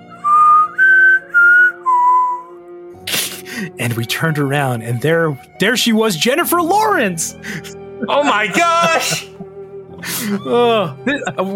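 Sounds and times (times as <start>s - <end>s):
person whistling a short four-note tune: 0.2s - 2.7s
speech: 3.6s - 9.3s, 10.1s - 11.5s
laughter: 7.4s - 11.5s.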